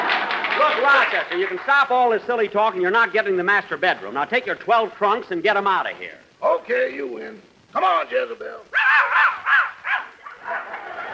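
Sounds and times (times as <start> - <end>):
speech: 0.6 - 9.0
dog barking inside a house: 8.7 - 10.8
laughter: 10.2 - 11.1.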